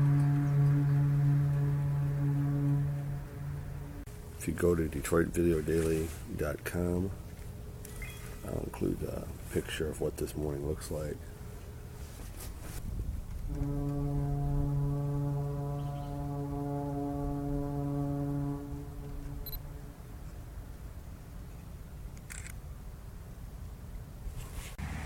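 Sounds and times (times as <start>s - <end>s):
ship foghorn blast on a foggy river: 0.0s - 7.0s, 13.4s - 21.3s
faint passing traffic: 0.0s - 12.8s, 13.6s - 25.0s
low outdoor rumble: 0.0s - 25.0s
speech: 4.4s - 7.2s, 8.4s - 11.3s, 13.5s - 13.9s.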